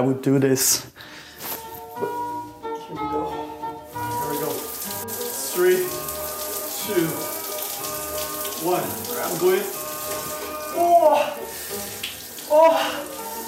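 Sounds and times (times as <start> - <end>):
speech: 0.0 - 1.2, 8.6 - 9.8, 10.8 - 11.4, 12.5 - 13.1
shower water running: 3.8 - 13.4.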